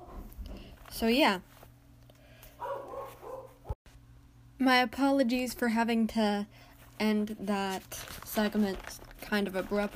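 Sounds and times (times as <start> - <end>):
low steady hum: 0.0 - 9.9
speech: 0.9 - 1.5, 4.6 - 9.9
dog barking: 2.6 - 3.8.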